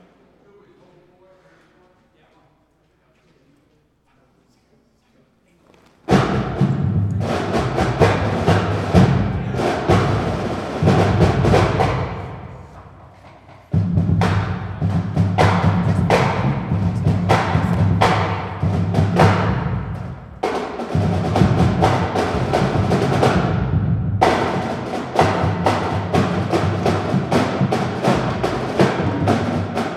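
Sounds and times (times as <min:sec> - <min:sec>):
drum solo in full ensemble practice: 0:06.1 - 0:29.9.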